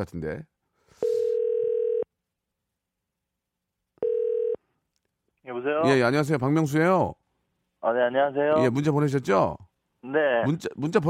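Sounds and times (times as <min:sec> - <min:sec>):
speech: 0:00.0 - 0:00.5, 0:05.5 - 0:07.2, 0:07.8 - 0:11.0
buzzy electronic telephone line tones while placing a call: 0:01.0 - 0:02.1, 0:04.0 - 0:04.6.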